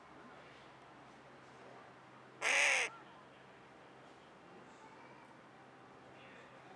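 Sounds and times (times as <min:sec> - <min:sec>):
carrion crow Corvus corone cawing: 0:02.4 - 0:02.9.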